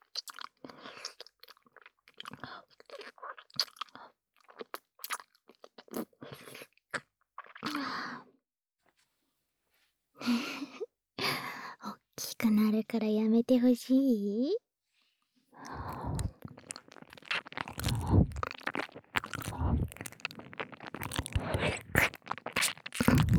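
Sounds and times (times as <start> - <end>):
crunching and chewing an apple: 0.0 - 7.8, 15.6 - 23.3
speech: 12.5 - 14.6.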